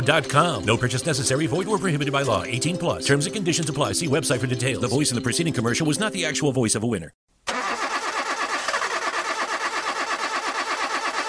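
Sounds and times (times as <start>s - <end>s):
speech: 0.0s - 7.2s
car engine cranking with starter grinding: 7.5s - 11.2s.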